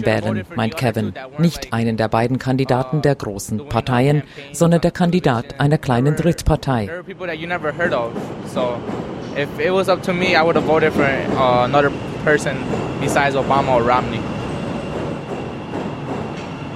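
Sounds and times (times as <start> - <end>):
speech: 0.0 - 14.3
trains rumbling past with wheels clattering: 5.6 - 16.7.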